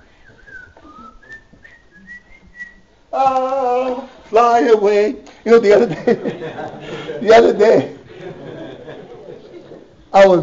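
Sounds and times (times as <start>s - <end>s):
person whistling a short wandering melody: 0.2s - 2.9s
speech: 3.1s - 8.0s, 10.1s - 10.4s
laughter: 5.6s - 10.0s.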